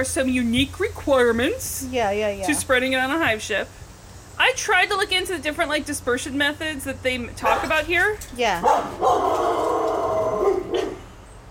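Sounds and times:
speech: 0:00.0 - 0:03.8, 0:04.4 - 0:09.6
dog barking: 0:07.4 - 0:07.8, 0:08.6 - 0:11.1.

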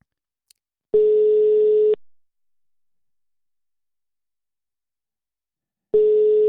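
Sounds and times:
electronic telephone tone after dialing a mobile number: 0:01.0 - 0:02.0, 0:06.0 - 0:06.4.

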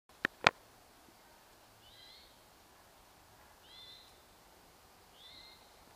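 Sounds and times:
Eastern towhee calls: 0:01.2 - 0:05.9.

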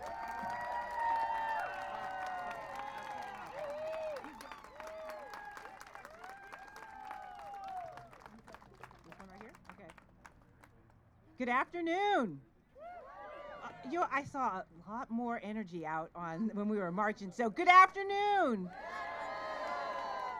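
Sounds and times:
people whooping and cheering for elected officials being introduced: 0:00.0 - 0:08.4, 0:12.8 - 0:13.9, 0:18.7 - 0:20.3
large crowd clapping at a climate rally: 0:00.0 - 0:10.9
speech: 0:11.4 - 0:12.5, 0:13.8 - 0:19.0.

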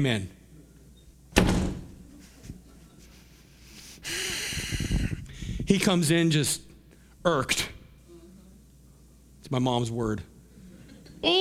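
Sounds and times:
speech: 0:00.0 - 0:00.4, 0:05.7 - 0:07.7, 0:09.4 - 0:10.3, 0:11.2 - 0:11.4
door shutting with a firm thud: 0:01.4 - 0:01.9
breathy rushing noise: 0:02.2 - 0:05.7.

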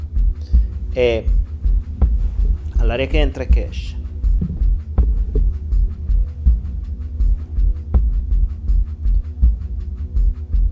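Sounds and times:
low droning hum: 0:00.0 - 0:10.7
steady repetitive shamanic drumming as meditation background music: 0:00.6 - 0:08.5
speech: 0:01.0 - 0:01.4, 0:02.8 - 0:04.0.

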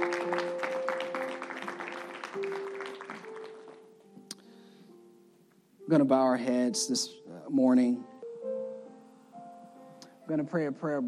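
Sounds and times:
audience clapping: 0:00.0 - 0:04.0
speech: 0:05.9 - 0:08.1, 0:10.3 - 0:11.0.

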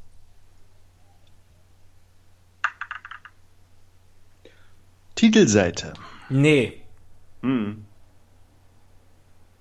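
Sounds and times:
low steady hum: 0:00.0 - 0:09.5
dice tumbling and settling on a hard surface: 0:02.6 - 0:03.4
speech: 0:05.2 - 0:06.8, 0:07.4 - 0:07.9.

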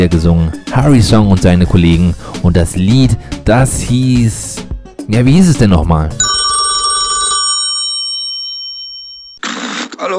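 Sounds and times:
speech: 0:00.0 - 0:06.3, 0:10.0 - 0:10.1
telephone bell ringing with a metallic clatter: 0:06.2 - 0:09.4.

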